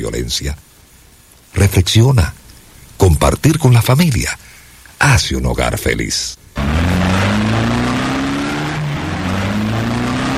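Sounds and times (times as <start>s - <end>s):
speech: 0.0s - 0.7s, 1.5s - 2.4s, 3.0s - 7.0s
car engine roaring while accelerating hard at high speed: 6.6s - 10.3s.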